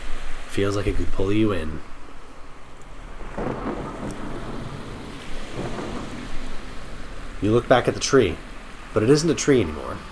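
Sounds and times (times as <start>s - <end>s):
steady rain hissing: 0.0s - 10.0s
speech: 0.6s - 1.9s, 7.4s - 10.0s
deep rolling thunder rumbling: 2.8s - 10.0s.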